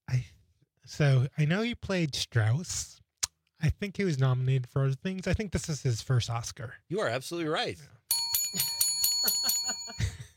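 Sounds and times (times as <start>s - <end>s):
speech: 0.9s - 3.0s, 3.6s - 9.4s
thin feeble bell ringing: 8.1s - 10.2s.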